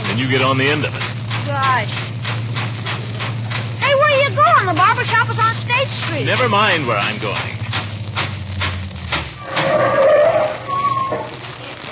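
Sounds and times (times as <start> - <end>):
car engine rumbling: 0.0 - 11.9
speech: 0.2 - 2.1, 4.3 - 7.6
car tires squealing as the vehicle skids to a halt: 9.3 - 11.6.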